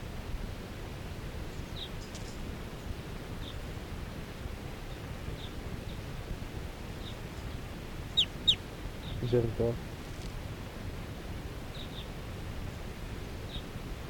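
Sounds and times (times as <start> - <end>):
steady hiss of noise: 0.0 - 14.0
wild birds chirping: 8.1 - 9.2.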